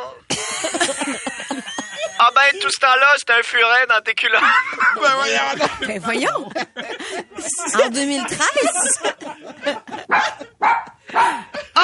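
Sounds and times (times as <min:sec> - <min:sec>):
laughter: 0:00.3 - 0:02.8, 0:04.2 - 0:11.8
speech: 0:02.5 - 0:11.8
pet dog barking: 0:10.0 - 0:11.5.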